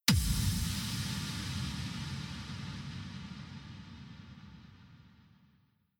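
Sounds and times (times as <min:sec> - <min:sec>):
future bass effect hit: 0:00.1 - 0:04.7.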